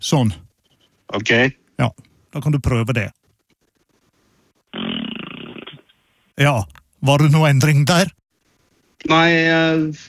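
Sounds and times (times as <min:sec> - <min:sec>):
speech: 0:00.0 - 0:00.4, 0:01.1 - 0:03.2, 0:06.4 - 0:08.2, 0:09.0 - 0:10.0
buzzing raspberry made with the mouth into a crack to mimic a fart: 0:04.7 - 0:06.0.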